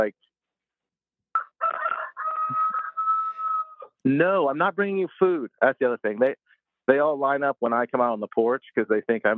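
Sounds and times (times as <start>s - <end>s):
speech: 0.0s - 0.2s, 4.0s - 9.3s
rooster crowing: 1.3s - 3.9s.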